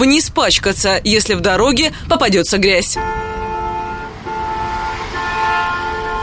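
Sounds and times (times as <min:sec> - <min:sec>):
speech: 0:00.0 - 0:03.3
low rumble of road traffic: 0:00.0 - 0:06.2
angry car horn honking in traffic: 0:02.8 - 0:06.2.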